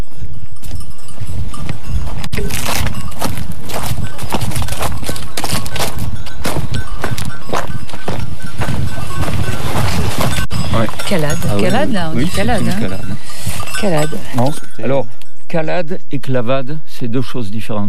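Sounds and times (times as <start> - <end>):
sheep hooves pattering and shuffling over rough ground: 0.0 - 15.5
sheep grazing with tearing and rustling: 2.3 - 10.4
speech: 11.6 - 13.1, 13.8 - 17.8.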